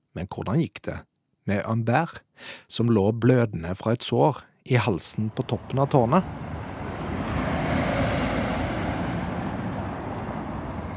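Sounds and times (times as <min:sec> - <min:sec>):
speech: 0:00.2 - 0:06.6
traffic at a busy city roundabout: 0:05.1 - 0:10.9.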